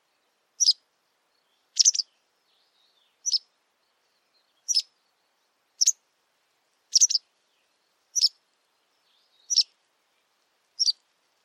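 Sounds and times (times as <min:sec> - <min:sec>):
White wagtail giving short sharp high chirps: 0:01.8 - 0:02.1, 0:03.2 - 0:03.4, 0:04.7 - 0:04.9, 0:06.9 - 0:07.2, 0:09.5 - 0:09.7, 0:10.8 - 0:11.0.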